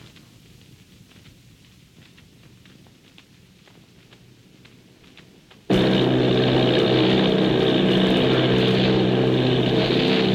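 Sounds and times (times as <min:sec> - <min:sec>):
propeller engines of eight army bombing planes droning: 0:05.7 - 0:10.3.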